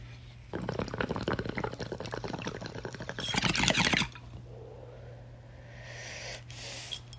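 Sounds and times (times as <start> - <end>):
faint steady hum: 0.0 - 7.1
water bubbling through a bong: 0.5 - 4.3.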